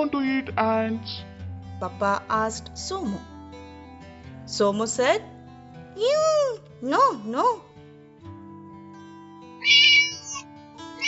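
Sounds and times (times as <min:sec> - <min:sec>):
speech: 0:00.0 - 0:03.3, 0:04.5 - 0:05.4, 0:06.0 - 0:07.7
cat meowing loudly: 0:09.6 - 0:10.4.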